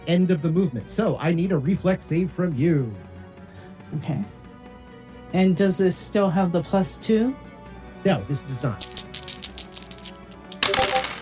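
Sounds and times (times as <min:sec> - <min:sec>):
speech: 0:00.0 - 0:03.1, 0:03.9 - 0:04.4, 0:05.3 - 0:09.1
dice rolled on a tabletop for a role-playing game: 0:08.6 - 0:11.2.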